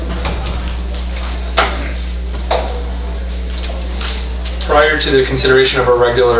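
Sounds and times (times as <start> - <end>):
door being shut with latch clicking: 0.0 - 1.8
steady electrical hum: 0.0 - 6.3
speech: 4.8 - 6.3.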